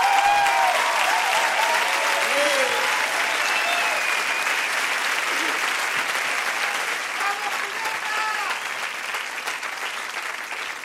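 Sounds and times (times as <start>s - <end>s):
cheering: 0.0s - 10.8s
large audience applauding: 0.0s - 10.8s
whistles: 3.3s - 4.9s.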